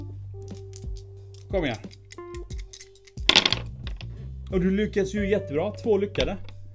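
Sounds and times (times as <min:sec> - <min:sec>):
several dice clattering onto a tabletop: 0:00.5 - 0:04.0
speech: 0:01.5 - 0:02.0, 0:04.5 - 0:06.5.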